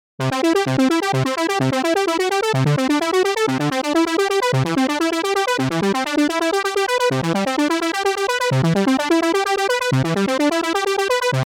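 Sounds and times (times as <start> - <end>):
synth arpeggio: 0.2 - 11.4.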